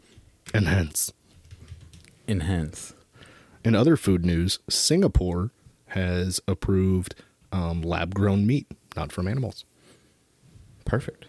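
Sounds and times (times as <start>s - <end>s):
man typing on a computer keyboard: 0.4s - 2.9s
speech: 0.5s - 1.2s, 2.3s - 3.0s, 3.6s - 9.7s, 10.9s - 11.2s.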